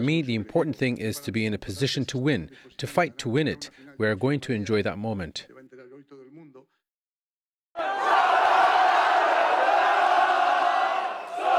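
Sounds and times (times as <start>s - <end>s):
speech: 0.0s - 5.5s
crowd of football fans cheering and chanting under the High Line in Manhattan: 7.8s - 11.5s.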